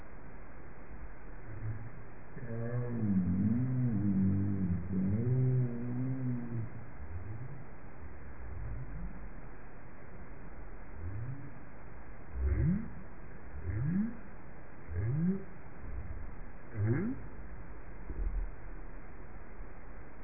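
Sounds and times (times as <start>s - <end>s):
right whale calls: 1.4s - 9.5s, 11.0s - 11.7s, 12.3s - 14.3s, 14.9s - 18.8s.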